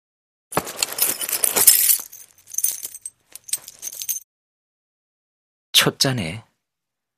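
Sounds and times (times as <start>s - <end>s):
gold coins jingling as pulled out of a safe: 0.6s - 4.2s
speech: 5.8s - 6.5s.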